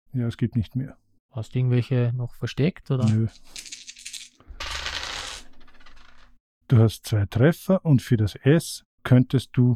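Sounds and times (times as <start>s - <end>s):
speech: 0.1s - 3.7s, 6.7s - 9.7s
dice clattering across a hard surface: 3.0s - 6.4s.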